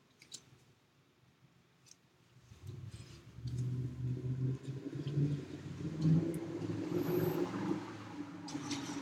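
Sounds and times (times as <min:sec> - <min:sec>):
car driving past: 0:02.7 - 0:09.0.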